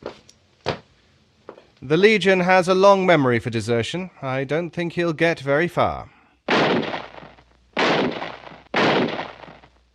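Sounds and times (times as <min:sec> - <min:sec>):
speech: 0:01.8 - 0:06.2
gunshots in a radio drama: 0:06.5 - 0:09.8.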